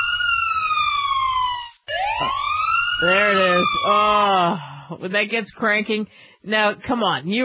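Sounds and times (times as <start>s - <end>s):
police siren wailing: 0.0s - 4.5s
speech: 3.0s - 7.4s.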